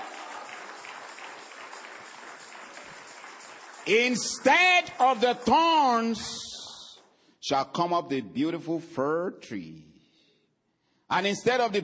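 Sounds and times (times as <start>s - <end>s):
crowd clapping: 0.0s - 7.2s
speech: 3.9s - 6.5s, 7.5s - 9.9s, 11.1s - 11.8s.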